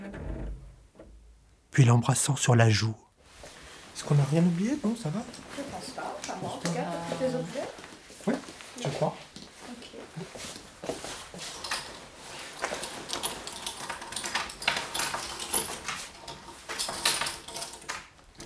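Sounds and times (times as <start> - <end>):
speech: 1.8 - 3.0, 4.0 - 9.2
handling noise: 3.3 - 18.4
key rattling and scraping in a door lock: 11.5 - 18.4.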